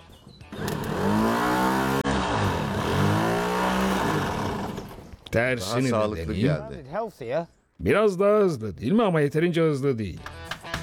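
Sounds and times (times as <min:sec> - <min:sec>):
starter motor wired directly to the supply cranking a vehicle engine: 0:00.5 - 0:05.2
speech: 0:05.4 - 0:10.3.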